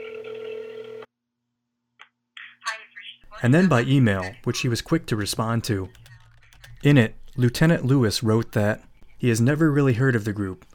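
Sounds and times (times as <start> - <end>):
steady electronic telephone tone of a call being placed: 0.0 - 1.1
speech: 3.4 - 6.1, 6.8 - 10.7.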